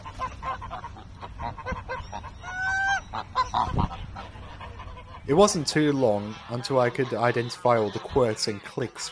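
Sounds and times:
geese honking at a pond: 0.0s - 9.1s
soft bustle at a pond: 0.0s - 9.1s
speech: 5.3s - 9.1s.

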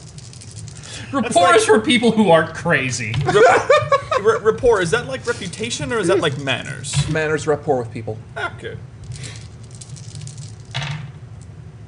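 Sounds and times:
low steady hum: 0.0s - 11.8s
speech: 1.1s - 8.9s
laughter: 3.2s - 4.8s
dice rolled for a rapport check clattering on a hard surface: 9.1s - 11.1s.

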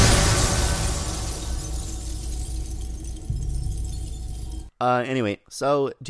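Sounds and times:
dense low rumble: 0.0s - 4.7s
glass shattering: 0.0s - 4.7s
speech: 4.8s - 6.0s.

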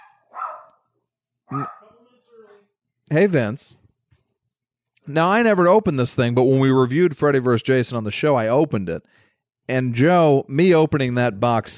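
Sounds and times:
dogs barking: 0.0s - 0.9s, 1.5s - 2.0s
speech: 1.5s - 1.8s, 3.1s - 3.8s, 5.1s - 11.7s.

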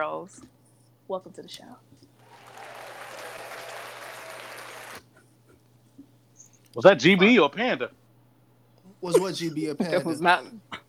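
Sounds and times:
speech: 0.0s - 2.1s, 6.8s - 8.0s, 9.0s - 10.8s
crowd clapping: 2.2s - 5.1s.

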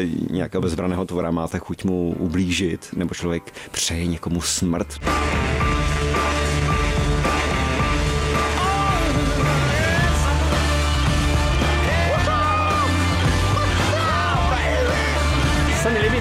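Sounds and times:
speech: 0.0s - 5.6s
rock song as film opening: 5.0s - 16.1s.

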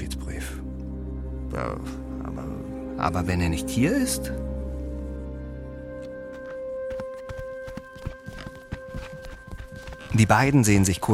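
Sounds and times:
speech: 1.5s - 4.4s, 10.2s - 11.1s
running footsteps: 6.0s - 11.1s.

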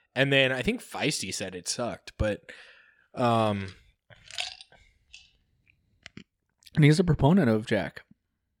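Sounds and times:
speech: 0.2s - 3.8s, 6.8s - 8.1s
person chewing ice: 4.3s - 4.7s.

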